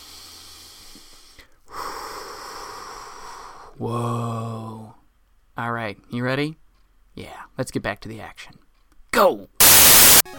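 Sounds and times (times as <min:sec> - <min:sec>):
deep breath: 0:00.0 - 0:04.5
speech: 0:03.8 - 0:04.3, 0:05.9 - 0:06.6, 0:07.2 - 0:08.6, 0:09.2 - 0:09.6.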